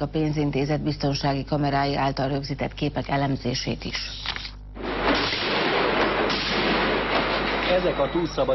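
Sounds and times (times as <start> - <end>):
speech: 0.0 - 4.4, 7.8 - 8.5
stun grenade explosion during police hostage rescue at a financial institution: 4.8 - 8.2.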